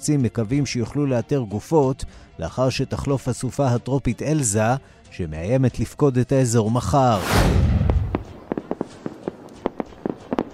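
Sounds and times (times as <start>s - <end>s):
speech: 0.0s - 7.7s
big opening firework boom: 7.1s - 8.6s
fireworks exploding for Independence Day celebrations in the United States: 7.2s - 10.5s.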